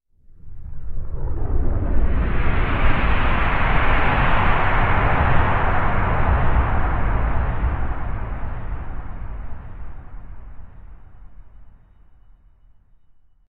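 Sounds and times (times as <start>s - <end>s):
steam whoosh: 1.1s - 11.8s
subwoofer rumble: 1.6s - 11.9s.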